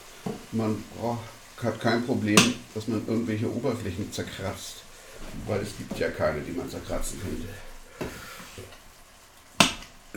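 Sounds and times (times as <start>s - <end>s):
food sizzling in a hot cast iron pan: 0.0s - 10.1s
speech: 0.5s - 7.7s
chopping knocks striking a cast iron pan as food is cut: 9.6s - 10.0s.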